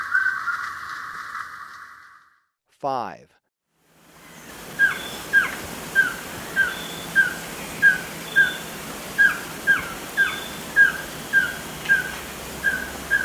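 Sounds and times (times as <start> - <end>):
speech: 2.8 - 3.4
hissy background: 3.9 - 13.2
White-streaked antvireo calling in Ecuador: 4.1 - 13.2.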